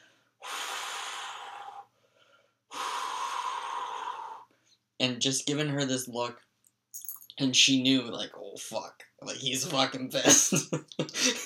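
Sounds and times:
person imitating a man's heavy angry breathing: 0.0s - 4.7s, 11.1s - 11.4s
speech: 5.0s - 6.5s, 7.4s - 11.4s.

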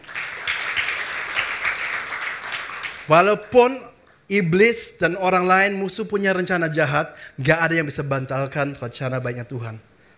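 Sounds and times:
audience applause: 0.0s - 3.3s
speech: 3.1s - 9.9s.

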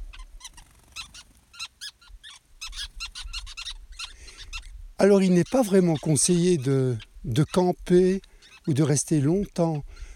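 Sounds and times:
birds chirping while building a large nest in an acacia in Namibia: 0.0s - 10.1s
speech: 5.0s - 10.0s.

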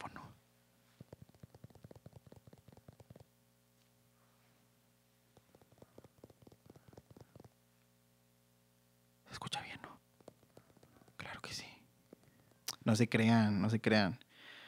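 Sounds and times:
fingertips tapping on a phone: 1.0s - 3.3s, 5.3s - 7.6s, 9.5s - 12.7s
speech: 12.9s - 14.2s.

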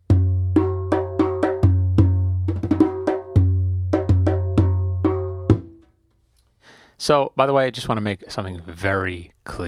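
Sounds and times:
doumbek hand drum played on the lap: 0.0s - 5.9s
speech: 7.0s - 9.6s.

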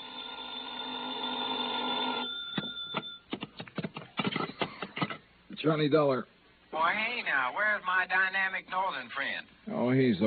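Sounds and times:
telephone ringing with a loud bell tone: 0.0s - 3.4s
speech: 5.6s - 10.2s.

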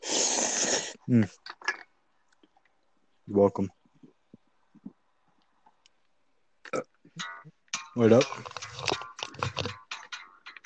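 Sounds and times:
airy slurp of a drink: 0.0s - 1.1s
speech: 1.1s - 1.5s, 3.3s - 3.8s, 6.7s - 7.3s, 8.0s - 9.0s.

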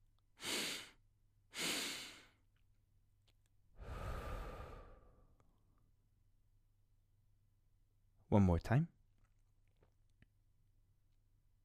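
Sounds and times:
sharp sniffing inhales through the nose in a breathing exercise: 0.4s - 2.3s
long airy exhale through the mouth in a breathing exercise: 0.4s - 2.4s, 3.8s - 5.3s
speech: 8.3s - 9.0s.

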